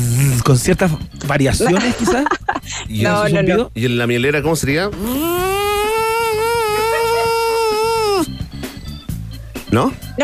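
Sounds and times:
person imitating a honeybee's buzz: 0:00.0 - 0:00.4, 0:05.0 - 0:08.4
speech: 0:00.5 - 0:05.5, 0:09.7 - 0:10.2
laughter: 0:01.6 - 0:02.8, 0:06.0 - 0:08.2
scattered breathy noises: 0:05.0 - 0:08.4.

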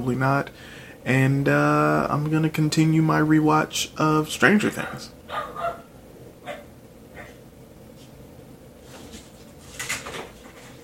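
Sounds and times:
speech: 0:00.0 - 0:05.5
steady low hum: 0:00.0 - 0:10.8
small female dog barking and yipping: 0:04.8 - 0:07.4.

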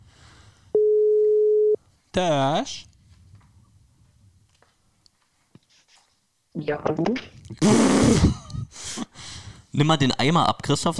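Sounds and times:
faint noise: 0:00.0 - 0:10.9
phone ringback tone while calling: 0:00.8 - 0:01.8
speech: 0:02.1 - 0:02.9, 0:06.6 - 0:08.4, 0:09.8 - 0:10.9.

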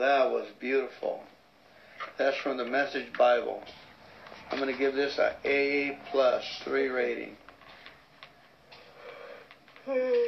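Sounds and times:
speech: 0:00.0 - 0:01.4, 0:02.0 - 0:03.9, 0:04.5 - 0:07.4, 0:09.8 - 0:10.2
person yawning with a voiced groan: 0:09.2 - 0:10.2.

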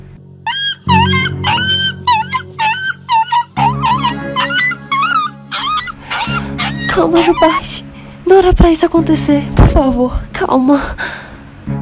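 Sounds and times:
injured puppy with broken paw whimpering and yelping: 0:00.5 - 0:07.8
speech: 0:07.0 - 0:11.3.

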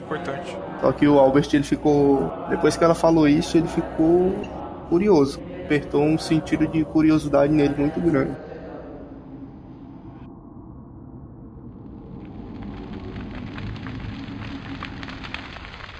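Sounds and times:
speech: 0:00.1 - 0:08.5
fire roaring and crackling in a small burning village: 0:10.0 - 0:15.9.

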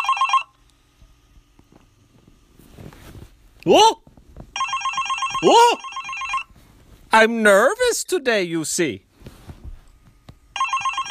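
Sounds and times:
mobile phone ringing with trilling electronic tone: 0:00.0 - 0:00.6, 0:04.6 - 0:06.6, 0:10.5 - 0:11.1
speech: 0:03.6 - 0:04.0, 0:05.4 - 0:05.9, 0:07.1 - 0:09.1.

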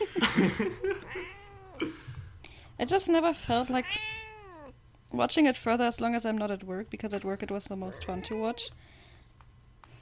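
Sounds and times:
laughter: 0:00.0 - 0:01.3
speech: 0:00.4 - 0:00.9, 0:02.8 - 0:04.1, 0:05.2 - 0:09.0
cat meowing and yowling: 0:01.0 - 0:01.8, 0:03.8 - 0:04.7, 0:07.9 - 0:08.7.

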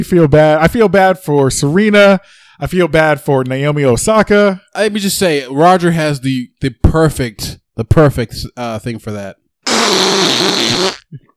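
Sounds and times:
speech: 0:00.0 - 0:11.3
loud buzzy fake fart noise: 0:09.6 - 0:11.3.

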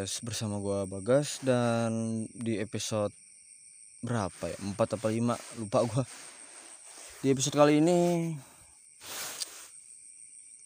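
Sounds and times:
speech: 0:00.0 - 0:03.2, 0:04.0 - 0:06.3, 0:07.2 - 0:09.2
crickets trilling in rice field at night: 0:00.0 - 0:10.6
frogs in rice field at night: 0:00.0 - 0:10.6
broadband rustling noise: 0:04.1 - 0:09.9.

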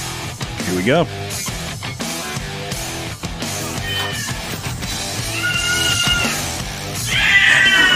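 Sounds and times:
speech: 0:00.7 - 0:01.4
cat meowing and caterwauling: 0:03.8 - 0:04.6, 0:05.2 - 0:07.9.

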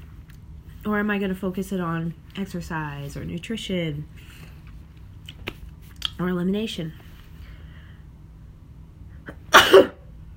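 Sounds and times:
speech: 0:00.8 - 0:04.5, 0:06.2 - 0:07.0
person sneezing: 0:09.3 - 0:10.0.

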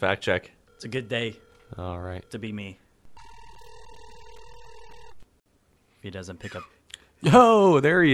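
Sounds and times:
speech: 0:00.0 - 0:02.8, 0:06.0 - 0:08.1
outgoing phone call ringback tone: 0:00.7 - 0:05.2.

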